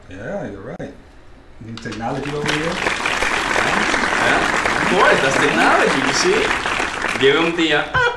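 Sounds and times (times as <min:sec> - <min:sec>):
speech: 0:00.1 - 0:03.3, 0:04.2 - 0:08.0
crowd applause: 0:02.0 - 0:07.9.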